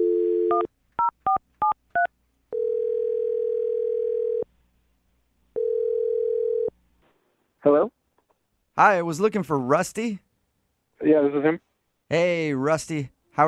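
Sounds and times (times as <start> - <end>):
phone line hum: 0.0 - 1.4, 2.5 - 4.4, 5.6 - 6.7
long steady phone ringing tones: 0.0 - 4.5, 5.6 - 6.7
speech: 8.8 - 10.2, 11.1 - 13.4.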